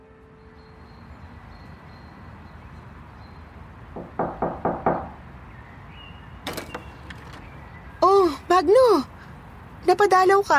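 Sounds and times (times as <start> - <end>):
knocking on the door of a home: 4.0 - 5.2
speech: 8.6 - 9.1, 9.9 - 10.5.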